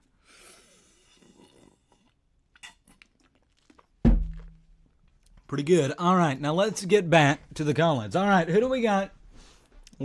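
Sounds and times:
person sipping and swallowing a drink: 0.0 - 4.5
loud thunk: 4.0 - 4.6
speech: 5.5 - 9.2.

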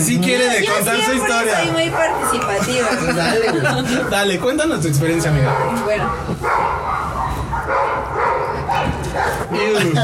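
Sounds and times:
speech: 0.0 - 6.9, 8.8 - 10.0
several dogs barking and yipping: 1.7 - 2.7, 5.2 - 10.0
laughter: 2.5 - 4.4, 9.6 - 10.0.

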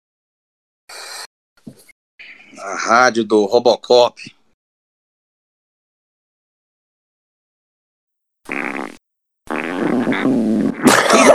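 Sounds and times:
speech: 2.5 - 4.4
fart: 8.5 - 11.3.

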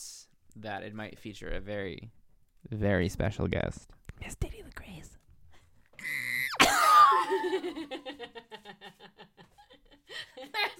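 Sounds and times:
speech: 0.6 - 5.2, 7.3 - 10.7
brief human yelp: 6.0 - 7.6
rapid rhythmic laughing squeals: 6.0 - 7.6
high-pitched excited human scream: 6.0 - 7.7.

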